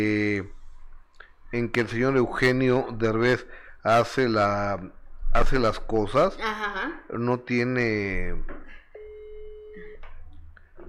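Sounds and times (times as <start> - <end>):
speech: 0.0 - 0.6, 1.5 - 8.8
hiss: 0.0 - 8.9
telephone busy signal while dialing a call: 9.0 - 10.0.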